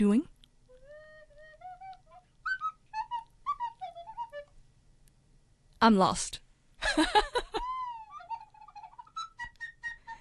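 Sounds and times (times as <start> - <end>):
speech: 0.0 - 0.3, 5.8 - 7.7
person giggling: 6.8 - 9.2.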